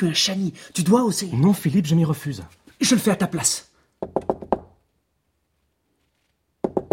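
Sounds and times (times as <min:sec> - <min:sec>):
speech: 0:00.0 - 0:04.2
knocking on a door: 0:04.0 - 0:04.8, 0:06.6 - 0:06.9.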